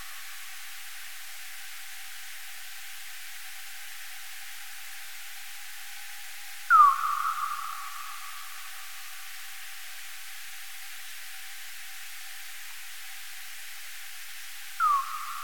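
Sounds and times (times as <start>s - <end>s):
Tadarida australis bat calling: 6.7s - 7.9s, 14.8s - 15.3s.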